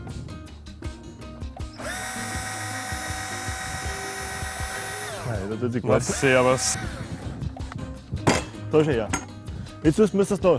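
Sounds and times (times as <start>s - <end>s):
electric power drill running: 1.6s - 7.5s
speech: 5.3s - 7.1s, 8.7s - 10.5s.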